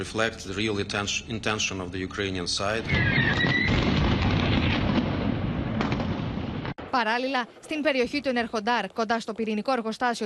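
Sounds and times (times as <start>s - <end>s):
speech: 0.0s - 3.9s, 7.0s - 10.2s
explosions: 2.7s - 6.9s.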